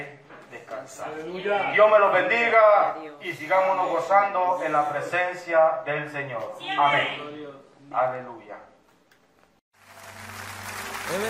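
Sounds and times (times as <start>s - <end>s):
speech: 0.8s - 8.7s, 11.1s - 11.2s
audience applause: 9.8s - 11.2s.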